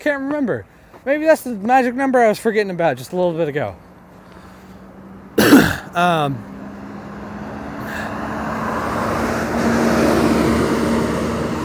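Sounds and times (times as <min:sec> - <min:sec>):
speech: 0:00.0 - 0:03.9, 0:06.0 - 0:06.5
bus rumbling past outside with engine and road noise: 0:03.8 - 0:11.6
throat clearing: 0:05.4 - 0:06.3.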